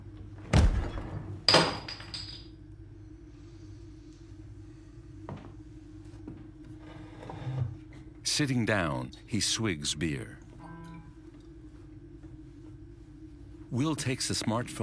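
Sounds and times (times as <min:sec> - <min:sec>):
low steady hum: 0:00.0 - 0:14.8
fridge door thunking shut: 0:00.5 - 0:01.3
speech: 0:08.4 - 0:10.4, 0:13.7 - 0:14.8.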